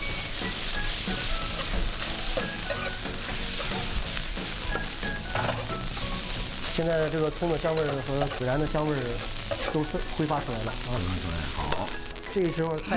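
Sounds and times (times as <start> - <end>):
scraping and clattering as meat is stir-fried in a wok: 0.0 - 10.2
tenderloin seasoned with chili powder, sugar and cumin sizzling in salad oil: 0.0 - 12.9
speech: 6.8 - 12.9.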